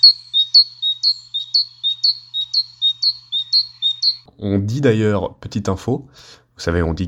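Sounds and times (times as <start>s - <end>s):
speech: 0.0s - 2.6s, 4.4s - 7.0s
great tit singing: 0.0s - 4.3s.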